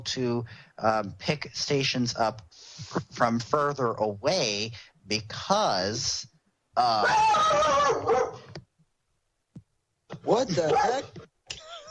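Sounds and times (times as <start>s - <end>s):
speech: 0.0s - 8.4s, 10.2s - 11.3s
dog giving a long drawn-out harmonic bark-like cry: 7.6s - 8.5s, 10.6s - 11.1s.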